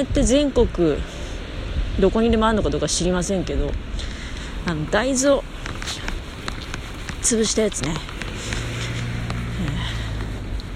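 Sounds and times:
speech: 0:00.0 - 0:01.2, 0:02.0 - 0:05.5, 0:07.2 - 0:08.1
road noise rumble outdoors: 0:00.0 - 0:10.7
car engine humming as a vehicle rolls past a crosswalk: 0:03.2 - 0:10.7.

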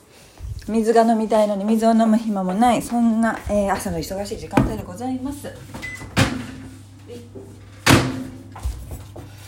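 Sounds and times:
low steady hum: 0:00.4 - 0:09.4
speech: 0:00.7 - 0:05.8
microwave oven door opening and shutting thuds: 0:04.5 - 0:04.9.

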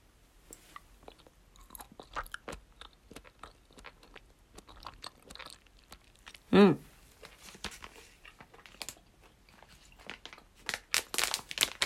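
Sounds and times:
chewing mango-flavored gummy candy: 0:00.7 - 0:06.5, 0:08.2 - 0:11.8
speech: 0:06.6 - 0:06.8.

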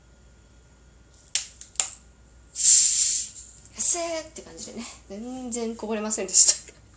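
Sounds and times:
carbonated water bottle cap twisted open with hissing gas: 0:02.6 - 0:03.4
speech: 0:04.0 - 0:06.6.

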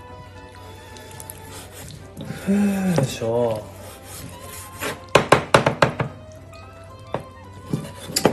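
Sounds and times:
speech: 0:02.4 - 0:03.7
knife chopping chicken for curry on a cutting board: 0:04.1 - 0:06.2.

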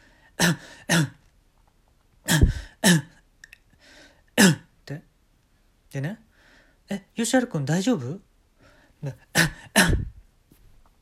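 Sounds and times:
person imitating a coughing fit: 0:00.4 - 0:01.2, 0:02.3 - 0:03.1, 0:04.4 - 0:04.7, 0:09.4 - 0:10.2
speech: 0:00.4 - 0:01.2, 0:07.3 - 0:08.3, 0:09.0 - 0:09.2
faint breathy sounds: 0:02.3 - 0:02.8, 0:03.7 - 0:04.3, 0:06.3 - 0:06.9, 0:08.6 - 0:09.7.

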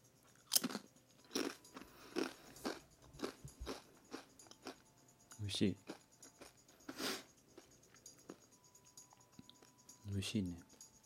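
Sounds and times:
person crunching on tortilla chips: 0:00.3 - 0:04.8
speech: 0:05.4 - 0:05.9, 0:10.2 - 0:10.7.

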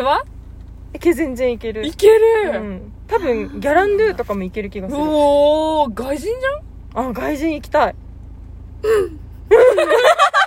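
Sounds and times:
speech: 0:00.0 - 0:00.3, 0:00.9 - 0:08.0, 0:08.8 - 0:10.4
loud voice crying and sobbing: 0:08.8 - 0:10.1
laughter: 0:09.3 - 0:10.4.

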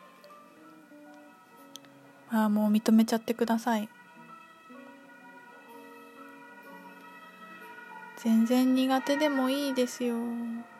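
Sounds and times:
speech: 0:02.3 - 0:04.0, 0:08.2 - 0:10.7
German emergency vehicle two-tone siren: 0:03.7 - 0:10.7.

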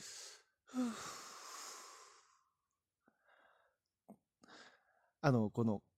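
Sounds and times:
airy yawn: 0:00.7 - 0:02.2
speech: 0:05.2 - 0:05.9.

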